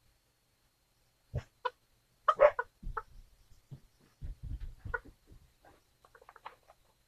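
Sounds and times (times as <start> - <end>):
rooster clucking: 1.4 - 3.2, 4.6 - 5.2.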